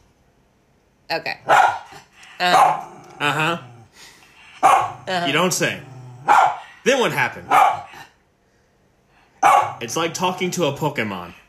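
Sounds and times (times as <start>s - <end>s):
speech: 1.1s - 3.7s, 4.7s - 7.8s, 9.8s - 11.4s
male miniature schnauzer barking: 1.4s - 2.9s, 4.6s - 5.1s, 6.2s - 6.7s, 7.5s - 8.0s, 9.4s - 9.8s.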